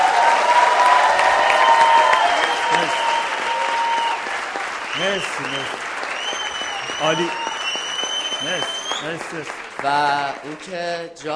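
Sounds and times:
crowd applauding: 0.0 - 11.3
whistles: 2.1 - 4.2, 4.8 - 9.3
speech: 5.2 - 5.8, 7.0 - 7.5, 8.4 - 11.3.

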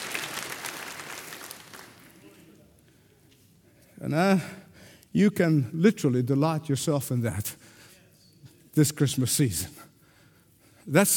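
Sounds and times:
audience clapping: 0.0 - 2.6
speech: 4.0 - 4.6, 5.2 - 7.8, 8.8 - 9.9, 10.9 - 11.1.

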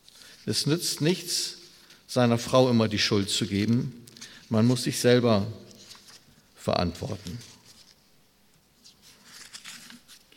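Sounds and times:
speech: 0.5 - 5.6, 6.6 - 7.5
paper pages being leafed through on a desk: 5.7 - 10.3.

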